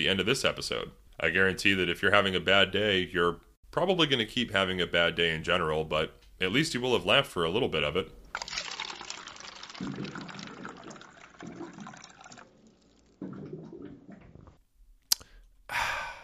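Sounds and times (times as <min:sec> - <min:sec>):
speech: 0:00.0 - 0:08.5, 0:09.8 - 0:10.2
water pouring and glugging from a water cooler jug: 0:08.3 - 0:14.6.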